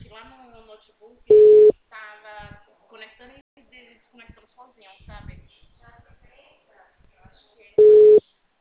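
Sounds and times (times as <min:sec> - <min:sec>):
telephone busy signal beep when calling a mobile number: 0:01.3 - 0:01.8, 0:07.8 - 0:08.2.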